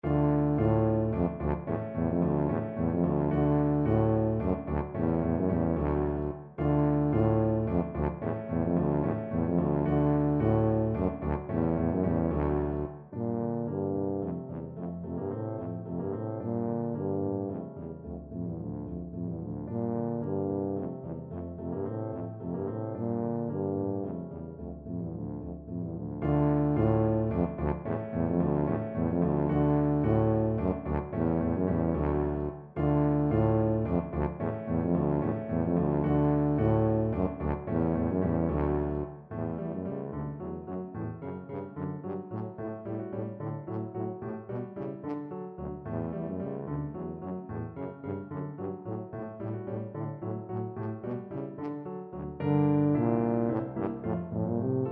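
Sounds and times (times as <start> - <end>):
tuba playing a classical piece: 0.0 - 54.8.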